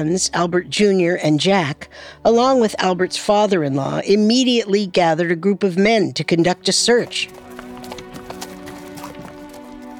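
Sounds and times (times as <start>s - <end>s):
speech: 0.0s - 7.4s
caravan of horses galloping into a desert at night: 6.4s - 9.9s.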